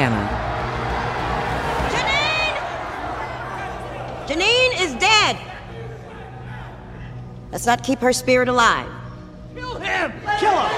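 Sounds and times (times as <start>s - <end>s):
crowd shouting and calling out: 0.0s - 7.2s, 9.8s - 10.7s
dense crowd murmuring: 0.0s - 7.3s
speech: 7.6s - 9.0s, 9.6s - 10.7s.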